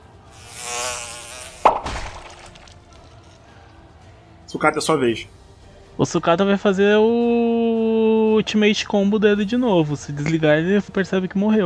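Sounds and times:
thin whining mosquito buzz: 0:00.0 - 0:03.4
sharp pop of a mosquito exploding: 0:01.6 - 0:02.6
speech: 0:04.5 - 0:05.4, 0:06.0 - 0:07.6, 0:08.4 - 0:11.6.

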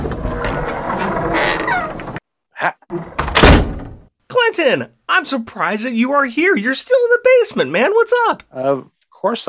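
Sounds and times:
door creaking open: 0:00.0 - 0:02.2, 0:02.9 - 0:04.1
rustling clatter of a door pulled open: 0:00.0 - 0:02.2
speech: 0:04.6 - 0:09.4.

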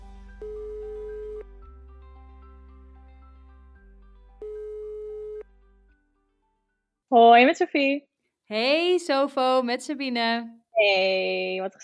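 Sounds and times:
phone ringing tone while calling: 0:00.4 - 0:01.4, 0:04.4 - 0:05.5
speech: 0:07.1 - 0:11.8.

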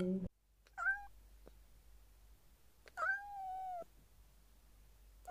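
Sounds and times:
cat meowing: 0:00.7 - 0:01.2, 0:02.9 - 0:03.9.

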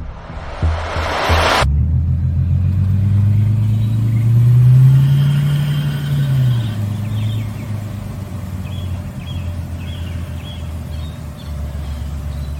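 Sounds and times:
prize car engine turning over and idling: 0:00.0 - 0:12.5.

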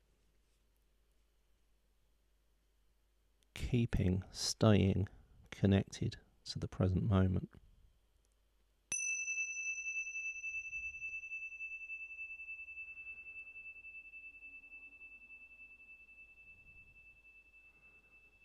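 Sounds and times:
speech: 0:03.6 - 0:07.6
Ting Sha Tibetan cymbals ringing: 0:08.9 - 0:18.4.

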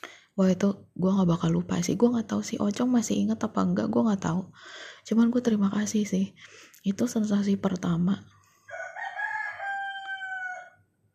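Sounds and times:
speech: 0:00.4 - 0:08.4
rooster crowing: 0:08.7 - 0:10.9.

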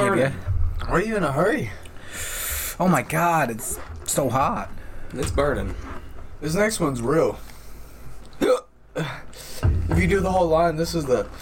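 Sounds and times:
faint noise: 0:00.0 - 0:11.4
speech: 0:00.2 - 0:07.5, 0:08.4 - 0:09.2, 0:10.0 - 0:11.4
person hiccuping: 0:08.3 - 0:08.7.

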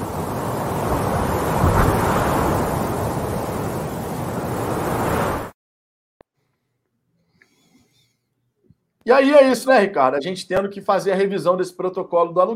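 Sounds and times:
roaring gust of wind: 0:00.0 - 0:05.5
speech: 0:09.1 - 0:12.5.

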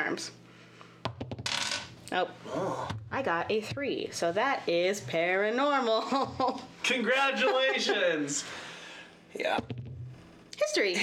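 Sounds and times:
speech: 0:00.0 - 0:00.4, 0:02.1 - 0:08.7, 0:09.3 - 0:09.6, 0:10.6 - 0:11.0
Kraken dice clattering onto a hard table: 0:01.5 - 0:01.9
laughter: 0:06.0 - 0:08.4.

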